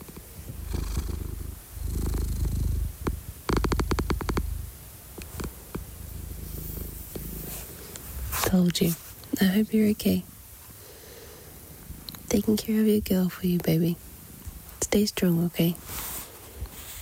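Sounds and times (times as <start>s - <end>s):
female cat purring in rapid clicking pulses: 0.0s - 8.9s
speech: 8.6s - 10.3s, 12.4s - 14.1s, 14.9s - 16.1s.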